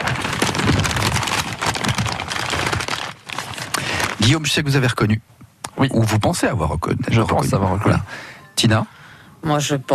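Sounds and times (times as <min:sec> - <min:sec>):
paper being crumpled: 0:00.0 - 0:04.5
speech: 0:04.2 - 0:09.9.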